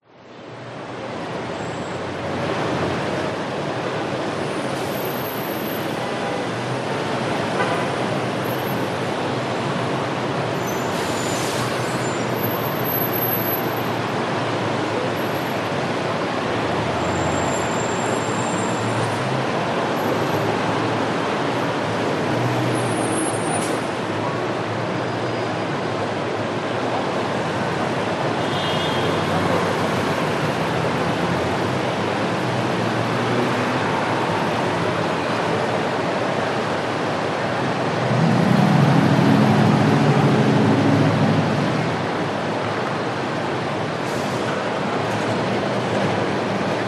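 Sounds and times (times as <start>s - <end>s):
traffic in LAX airport terminal parking garage in the USA: 0.0s - 46.8s.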